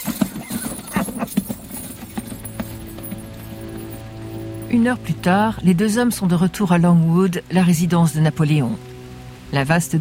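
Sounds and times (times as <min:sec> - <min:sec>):
horses galloping sound effect: 0:00.0 - 0:05.1
speech: 0:04.7 - 0:08.9, 0:09.5 - 0:09.9.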